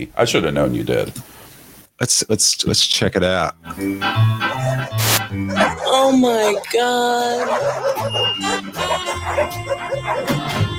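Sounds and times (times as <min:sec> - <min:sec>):
speech: 0:00.0 - 0:01.3, 0:02.0 - 0:10.7
dense steady background of tonal sound: 0:03.7 - 0:10.7
dogs barking and yipping: 0:04.4 - 0:10.7.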